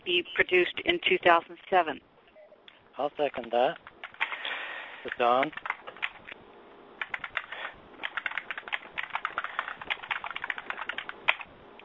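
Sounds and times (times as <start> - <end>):
speech: 0.1 - 2.1, 3.0 - 3.9, 5.0 - 5.7
rapid clicking of computer keys: 3.2 - 6.4, 7.0 - 11.5.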